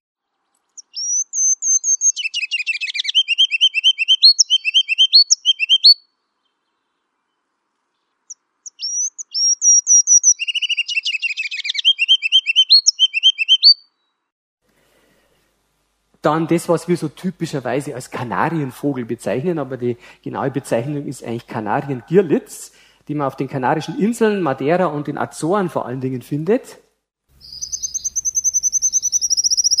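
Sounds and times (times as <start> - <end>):
ruby-crowned kinglet singing: 0.2 - 14.3, 27.4 - 29.7
speech: 16.2 - 26.8.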